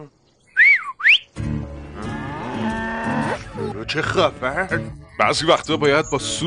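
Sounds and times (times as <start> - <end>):
speech: 0.0 - 0.2, 3.9 - 6.4
whistled notes: 0.5 - 1.4
cow letting out a long deep moo: 1.8 - 3.6.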